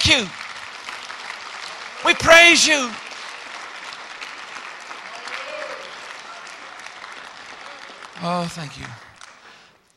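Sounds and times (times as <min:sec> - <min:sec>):
audience applause: 0:00.0 - 0:09.8
speech: 0:00.1 - 0:00.4, 0:02.0 - 0:03.0, 0:08.2 - 0:09.0
faint voice or cheer: 0:05.1 - 0:06.5.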